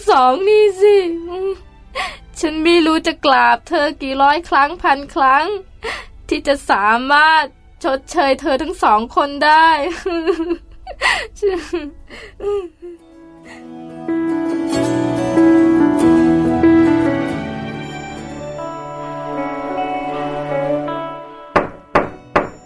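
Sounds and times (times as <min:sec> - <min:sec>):
speech: 0:00.0 - 0:15.5
sustained voiced or tonal sound: 0:13.0 - 0:22.6
quick solid knocks on a door: 0:21.6 - 0:22.6.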